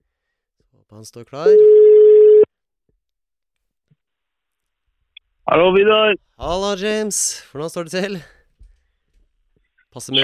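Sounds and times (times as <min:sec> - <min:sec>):
speech: 0:00.8 - 0:02.0, 0:05.5 - 0:08.4, 0:10.0 - 0:10.2
loud steady telephone ringback tone: 0:01.5 - 0:02.5.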